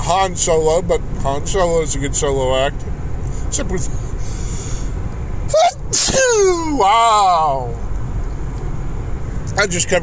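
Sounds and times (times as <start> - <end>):
low rumble: 0.0 - 10.0
speech: 0.1 - 4.4, 5.5 - 7.8, 9.6 - 10.0
single loud sneeze next to the microphone: 5.9 - 6.4.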